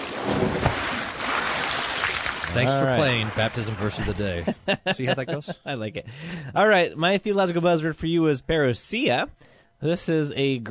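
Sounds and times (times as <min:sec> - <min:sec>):
water splashing: 0:00.0 - 0:04.4
laughter: 0:02.5 - 0:06.6
speech: 0:02.6 - 0:10.6.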